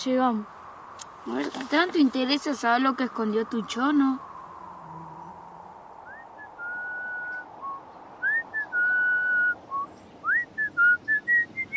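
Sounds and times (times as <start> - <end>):
speech: 0.0 - 4.3
person whistling a military march tune: 6.1 - 11.7.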